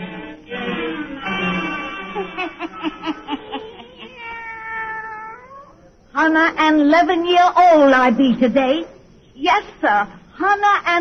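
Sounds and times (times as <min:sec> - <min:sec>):
laughter: 0:01.1 - 0:04.3
black cat meowing in long wavering yowls: 0:03.8 - 0:05.8
speech: 0:06.2 - 0:10.9.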